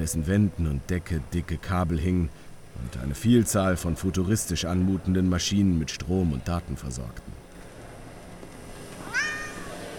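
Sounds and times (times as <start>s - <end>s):
speech: 0.0s - 7.4s
quiet hum inside a huge warehouse: 0.0s - 9.9s
cat meowing: 9.1s - 9.7s.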